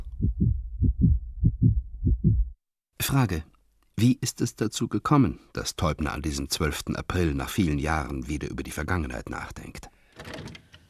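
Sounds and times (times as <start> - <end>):
heartbeat thumping: 0.0 - 2.6
speech: 3.1 - 10.4.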